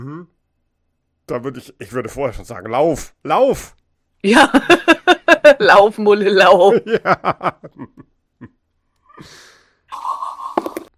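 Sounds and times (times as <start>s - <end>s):
speech: 1.3s - 4.9s, 5.5s - 8.6s, 9.2s - 10.2s
breathy exhale: 9.2s - 9.9s.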